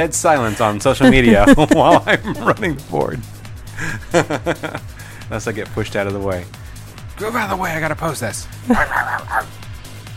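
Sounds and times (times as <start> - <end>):
speech: 0.0 - 6.6, 7.2 - 9.6
laughter: 0.4 - 3.0, 3.8 - 4.8, 8.7 - 9.4
person imitating a dog, barking woofs: 8.7 - 9.5.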